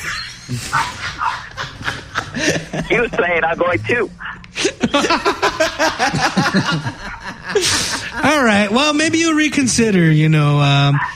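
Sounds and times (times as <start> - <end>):
dog barking in agitated bursts: 0.0 - 1.7, 4.2 - 4.4, 10.8 - 11.1
speech: 0.5 - 1.8, 2.4 - 11.1
laughter: 0.9 - 3.7, 4.5 - 9.0.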